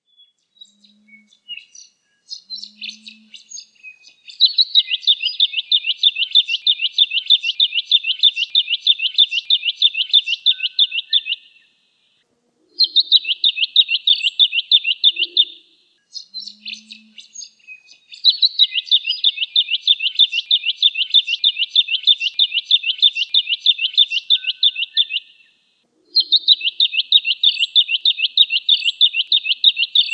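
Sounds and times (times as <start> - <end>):
Jacky winter bird: 0.0 - 11.8, 12.6 - 30.1.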